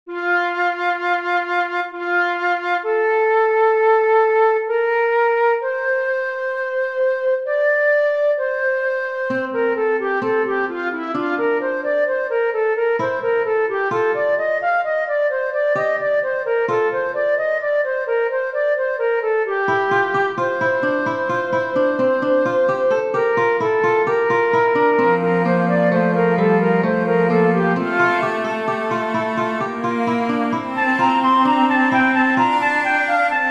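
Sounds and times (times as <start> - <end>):
flute: 0.1 - 33.4
cello: 9.2 - 17.8, 19.6 - 33.4.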